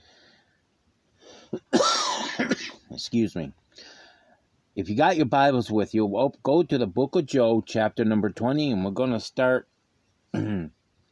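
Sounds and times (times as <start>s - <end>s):
person with an allergy clearing throat: 1.6s - 2.8s, 10.3s - 10.8s
person with an allergy coughing: 1.6s - 2.8s, 10.4s - 10.7s
speech: 3.0s - 3.6s, 4.8s - 9.7s, 10.3s - 10.8s.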